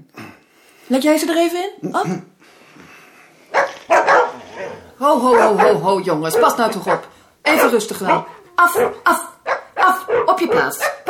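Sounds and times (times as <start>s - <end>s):
speech: 0.9s - 2.3s, 5.0s - 11.0s
dogs barking excitedly: 3.5s - 11.0s.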